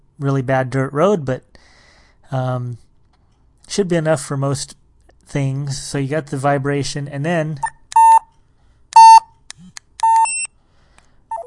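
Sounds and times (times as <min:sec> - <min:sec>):
speech: 0:00.2 - 0:01.7, 0:02.3 - 0:02.8, 0:03.7 - 0:07.7
electronic beeps from a device entering tone mode: 0:07.6 - 0:08.2, 0:09.0 - 0:09.2, 0:10.0 - 0:10.5.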